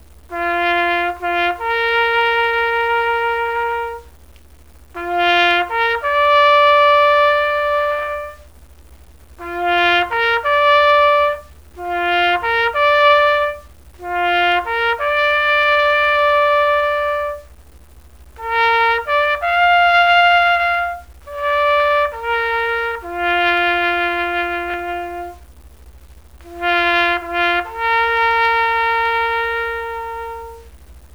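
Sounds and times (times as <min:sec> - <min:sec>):
bugle call: 0:00.3 - 0:04.1, 0:05.0 - 0:08.5, 0:09.4 - 0:17.5, 0:18.4 - 0:25.5, 0:26.4 - 0:30.8.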